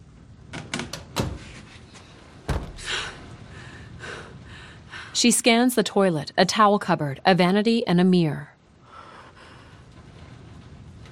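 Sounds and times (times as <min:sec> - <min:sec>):
bathroom door being shut with wooden knocks and clunks: 0:00.5 - 0:01.7, 0:02.4 - 0:03.1
bathroom door lock soft rattling slide: 0:00.5 - 0:01.8
speech: 0:05.2 - 0:08.6.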